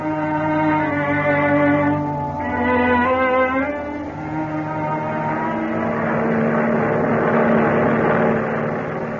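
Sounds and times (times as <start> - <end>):
transport airplane engine drone flying at high speed: 0.0 - 9.1.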